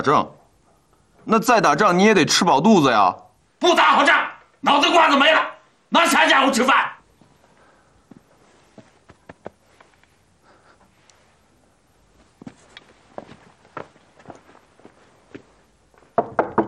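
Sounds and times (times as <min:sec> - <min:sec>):
speech: 0:00.0 - 0:00.4, 0:01.2 - 0:07.0
knocking on a door: 0:16.2 - 0:16.6.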